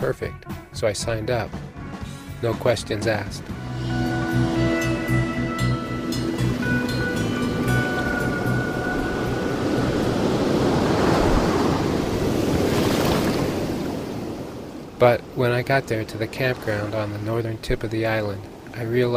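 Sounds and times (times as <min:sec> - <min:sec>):
speech: 0:00.0 - 0:01.7, 0:02.4 - 0:04.5, 0:15.0 - 0:19.1
soft tonal music bed: 0:00.0 - 0:10.5
ocean surf waves breaking: 0:01.3 - 0:19.1.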